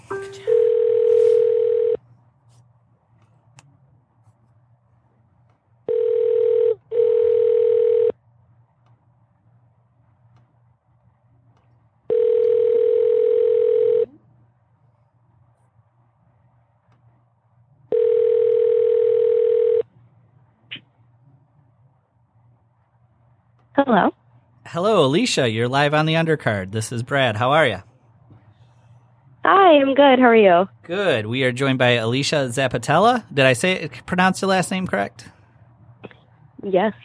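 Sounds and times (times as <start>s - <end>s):
ringback tone of a phone call placed to a radio guest: 0.1s - 2.0s, 5.9s - 8.1s, 12.1s - 14.1s, 17.9s - 19.8s
speech: 24.8s - 27.9s, 29.7s - 35.4s, 36.6s - 37.0s.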